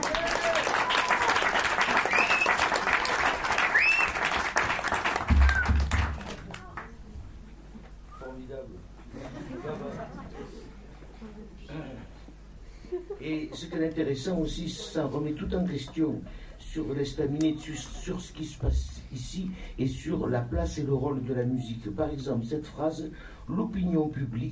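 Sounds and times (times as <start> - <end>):
whoops from audience: 0.0 - 2.7, 3.6 - 4.2, 5.3 - 6.0
audience applauding loudly: 0.0 - 7.0
laughter: 9.0 - 12.1
speech: 13.6 - 24.4.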